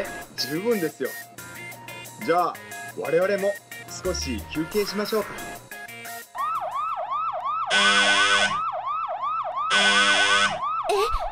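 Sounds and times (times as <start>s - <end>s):
speech: 0.4s - 1.5s, 2.2s - 5.5s, 7.8s - 8.2s
loud alarm siren wailing: 6.4s - 10.9s.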